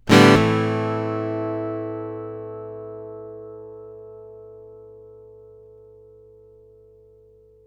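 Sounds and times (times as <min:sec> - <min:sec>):
acoustic guitar one shot in A minor: 0:00.0 - 0:03.6.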